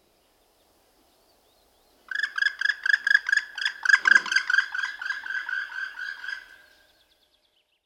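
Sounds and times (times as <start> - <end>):
black woodpecker fast run of harsh clipped notes: 2.1 - 6.8.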